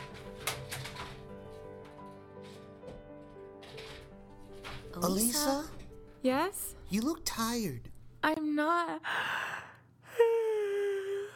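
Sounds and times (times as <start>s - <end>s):
speech: 5.0s - 9.4s
tired woman yawning while working late at her loom: 10.0s - 11.3s.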